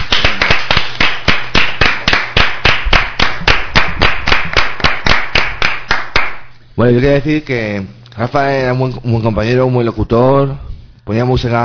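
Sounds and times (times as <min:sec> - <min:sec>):
hands clapping in steady rhythmic applause: 0:00.0 - 0:06.5
speech: 0:06.8 - 0:11.6.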